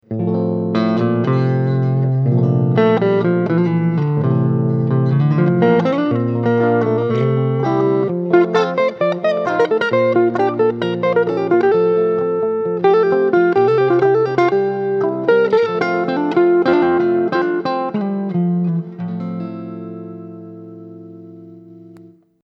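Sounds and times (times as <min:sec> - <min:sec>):
Stratocaster electric guitar playing rautalanka: 0:00.0 - 0:22.2.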